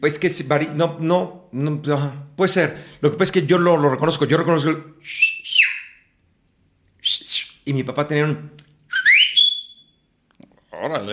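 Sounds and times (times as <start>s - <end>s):
speech: 0.0s - 5.6s, 7.1s - 8.6s, 10.8s - 11.1s
person whistling a family signal call: 5.0s - 6.1s, 7.0s - 7.6s, 8.9s - 10.0s.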